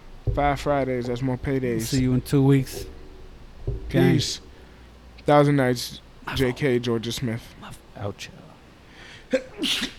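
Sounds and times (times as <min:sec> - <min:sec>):
speech: 0:00.4 - 0:03.0, 0:03.9 - 0:04.5, 0:05.3 - 0:08.4, 0:09.3 - 0:09.9
person sneezing: 0:09.3 - 0:09.9.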